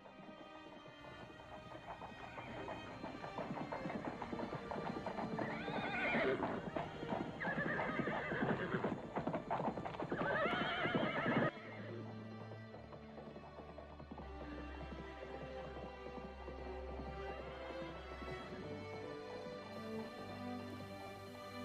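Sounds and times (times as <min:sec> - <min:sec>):
rapid clatter of horse hooves: 0:00.0 - 0:21.6
horses neighing: 0:03.4 - 0:12.0.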